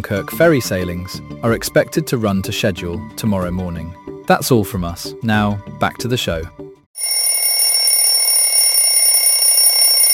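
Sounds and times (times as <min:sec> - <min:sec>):
speech: 0:00.0 - 0:06.6
alarm clock ringing: 0:07.0 - 0:10.1.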